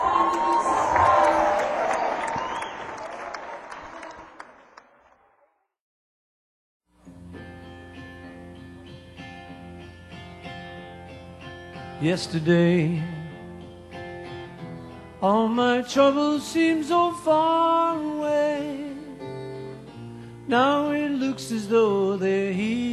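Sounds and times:
crowd applauding and cheering: 0.0 - 5.5
music: 6.9 - 22.9
speech: 12.0 - 13.2, 15.2 - 18.4, 20.5 - 22.9.

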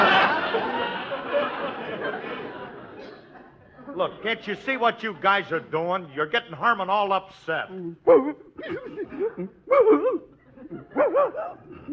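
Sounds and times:
laughter: 0.0 - 4.1, 8.6 - 11.9
speech: 4.0 - 11.9
big St. Bernard dog barking and grumbling: 11.0 - 11.6.

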